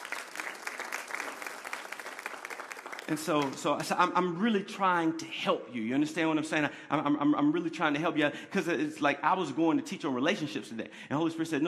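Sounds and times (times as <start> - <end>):
audience applause during a sermon: 0.0 - 3.9
speech: 3.1 - 11.6.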